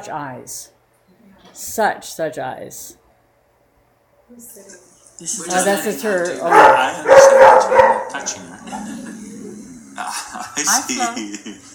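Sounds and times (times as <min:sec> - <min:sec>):
speech: 0:00.0 - 0:03.0, 0:04.3 - 0:09.2, 0:10.0 - 0:11.7
female dog growling protectively: 0:06.4 - 0:10.4
laughter: 0:08.1 - 0:11.7.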